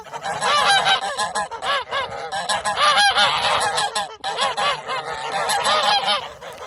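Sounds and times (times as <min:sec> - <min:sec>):
flock of geese honking and cackling: 0:00.0 - 0:06.6.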